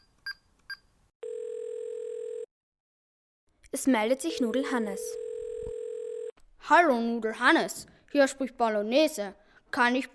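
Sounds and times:
telephone ringing tone: 0:01.2 - 0:02.5, 0:04.9 - 0:06.4
speech: 0:03.7 - 0:05.2, 0:06.7 - 0:10.1.

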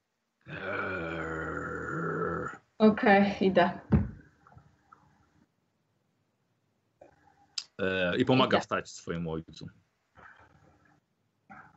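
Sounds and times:
girl growling like a dog: 0:00.5 - 0:02.6
speech: 0:02.8 - 0:03.9, 0:08.2 - 0:09.9.

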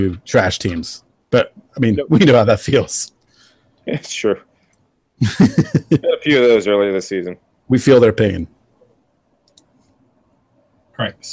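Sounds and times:
speech: 0:00.0 - 0:03.2, 0:03.8 - 0:04.5, 0:05.2 - 0:08.6, 0:11.0 - 0:11.3
low room hum: 0:00.0 - 0:11.3
laughter: 0:05.2 - 0:06.3
sharp keyboard clicks: 0:09.4 - 0:09.7.

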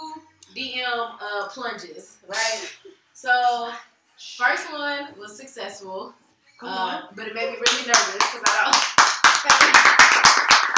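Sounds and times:
speech: 0:00.6 - 0:10.5
small group clapping: 0:07.6 - 0:10.7.

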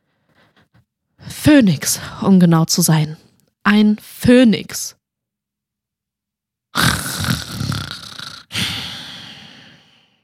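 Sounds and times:
speech: 0:01.4 - 0:05.0
loud rasping snores: 0:06.8 - 0:09.0.

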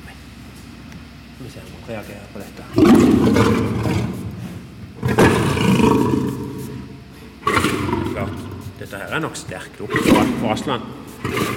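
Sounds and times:
speech: 0:01.4 - 0:04.0, 0:08.8 - 0:11.5
lion roaring: 0:02.7 - 0:08.9, 0:09.8 - 0:11.5.

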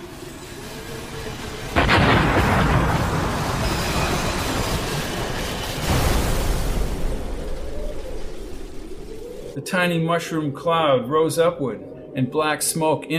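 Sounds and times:
craft crashing into a hilly ridge and exploding: 0:01.3 - 0:09.2
speech: 0:09.7 - 0:13.1.

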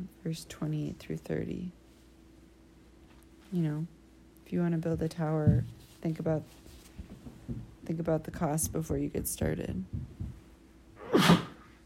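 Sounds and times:
speech: 0:00.2 - 0:01.8, 0:03.5 - 0:06.6, 0:07.5 - 0:10.1
person sneezing: 0:11.0 - 0:11.8.

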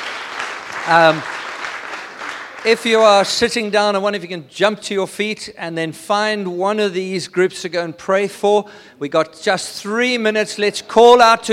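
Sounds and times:
crowd clapping: 0:00.0 - 0:03.6
speech: 0:00.8 - 0:01.4, 0:02.6 - 0:11.5.

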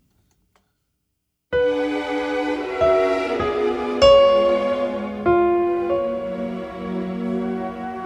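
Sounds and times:
keyboard notes playing the violin line: 0:01.6 - 0:08.0
recorded orchestral passage: 0:01.6 - 0:08.0.

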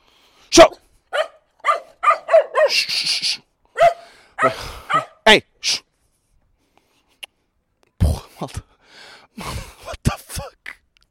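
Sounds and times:
speech: 0:00.6 - 0:00.8, 0:02.7 - 0:03.1, 0:04.4 - 0:04.7, 0:05.3 - 0:05.8
dog barking aggressively while trying to bite a person: 0:01.1 - 0:02.9, 0:03.8 - 0:05.2
dog snarling: 0:03.8 - 0:05.1.

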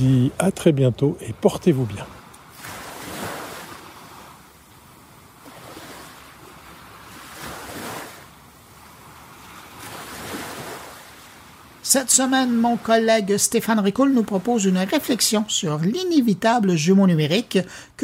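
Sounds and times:
speech: 0:00.0 - 0:02.2, 0:11.9 - 0:18.0
sea waves washing onto a shore: 0:00.0 - 0:16.9
wind: 0:00.0 - 0:18.0
constant hiss of surf: 0:01.8 - 0:13.0.

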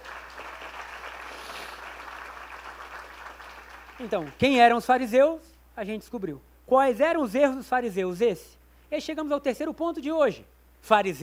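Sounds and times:
congregation clapping: 0:00.0 - 0:04.6
speech: 0:04.0 - 0:11.2.

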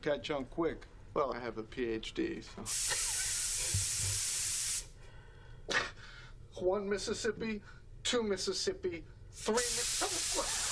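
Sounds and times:
speech: 0:00.0 - 0:03.3, 0:06.6 - 0:09.9
spray tan gun spraying: 0:02.7 - 0:04.9, 0:09.4 - 0:10.7.

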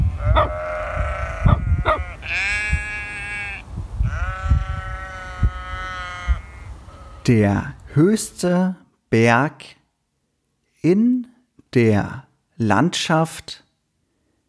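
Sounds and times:
sheep bleating beside a hut: 0:00.2 - 0:07.3
speech: 0:07.3 - 0:09.8, 0:10.8 - 0:13.6.

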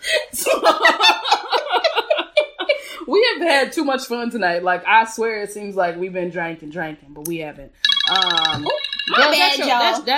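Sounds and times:
laughter: 0:00.4 - 0:03.0
speech: 0:03.6 - 0:10.1
mobile phone ringing with a bright electronic tone: 0:07.8 - 0:10.0.

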